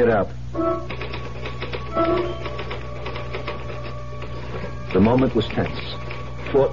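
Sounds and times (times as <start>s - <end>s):
speech: 0.0s - 0.9s, 2.0s - 2.6s, 4.9s - 6.7s
faint tonal ring: 0.5s - 1.0s
typewriter keystrokes: 0.9s - 6.7s.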